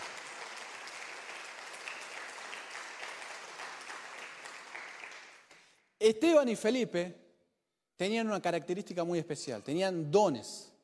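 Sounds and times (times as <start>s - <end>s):
large crowd applauding: 0.0s - 5.7s
speech: 6.0s - 7.2s, 8.0s - 10.7s.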